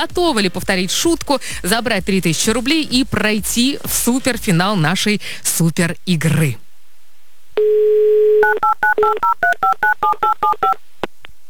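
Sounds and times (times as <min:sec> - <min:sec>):
speech: 0:00.0 - 0:06.6, 0:08.4 - 0:10.9
telephone dial tone: 0:07.6 - 0:09.4
telephone keypad tones: 0:08.4 - 0:10.8.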